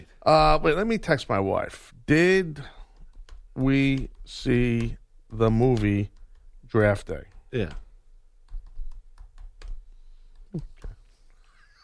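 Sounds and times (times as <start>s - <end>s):
speech: 0.2s - 2.8s, 3.6s - 7.8s, 10.5s - 10.8s
clicky keyboard typing: 2.8s - 11.1s.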